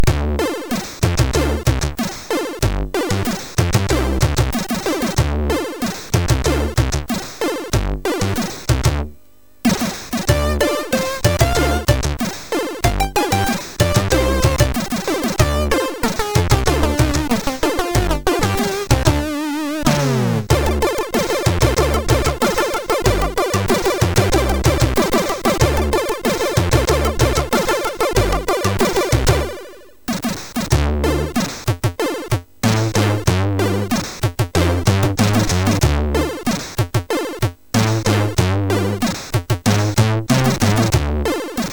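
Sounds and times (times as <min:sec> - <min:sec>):
jazz vibe chiptune music on MOS6581R3: 0:00.0 - 0:30.1, 0:30.7 - 0:31.4, 0:32.0 - 0:36.5, 0:37.2 - 0:39.1, 0:39.7 - 0:41.7.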